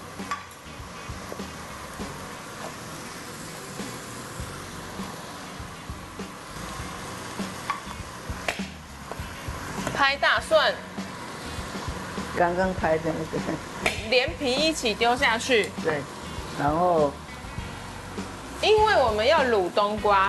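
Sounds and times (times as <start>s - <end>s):
food frying gently in a pan on low heat: 0.0s - 20.2s
speech: 10.0s - 10.8s, 12.4s - 17.2s, 18.6s - 20.2s.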